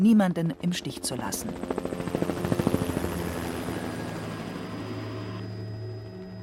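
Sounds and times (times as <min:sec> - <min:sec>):
speech: 0:00.0 - 0:02.1
helicopter rotor thumping and engine drone: 0:00.8 - 0:05.5.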